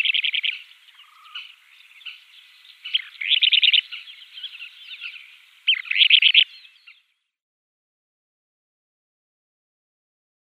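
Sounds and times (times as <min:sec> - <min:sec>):
Kentish plover pair display calls in flight: 0:00.0 - 0:07.1.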